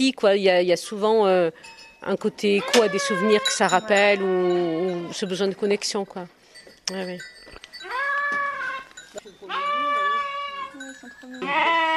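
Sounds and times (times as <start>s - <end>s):
speech: 0.0s - 7.7s
goats and sheep bleating on a farm: 2.6s - 5.2s, 7.8s - 11.9s.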